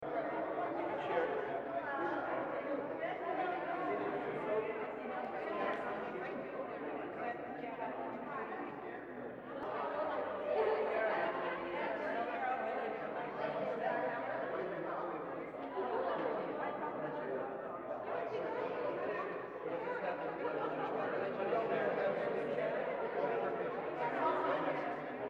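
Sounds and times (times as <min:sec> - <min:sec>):
ambient tavern crowds: 0:00.0 - 0:25.2.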